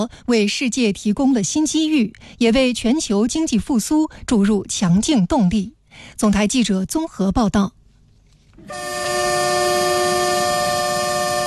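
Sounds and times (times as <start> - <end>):
speech: 0.0 - 7.8
freight train horn at a railway station: 8.6 - 11.4.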